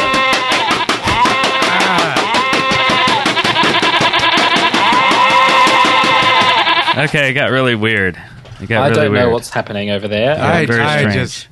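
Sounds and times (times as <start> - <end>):
person bleating like a sheep: 0.0 - 7.0
speech: 7.0 - 11.5.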